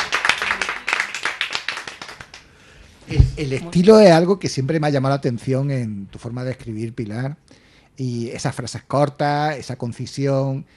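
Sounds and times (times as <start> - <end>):
a few people clapping: 0.0 - 2.5
speech: 3.1 - 10.7.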